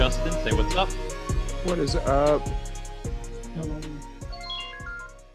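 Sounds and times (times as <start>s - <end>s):
speech: 0.1s - 2.7s
melodic phone ringtone from an incoming call: 4.3s - 5.2s.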